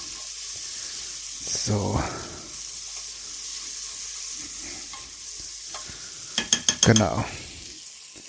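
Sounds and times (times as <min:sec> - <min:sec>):
onions frying in a pan: 0:00.0 - 0:08.2
speech: 0:01.4 - 0:02.3, 0:06.9 - 0:07.4
spoon stirring and scraping a pan: 0:02.9 - 0:07.1.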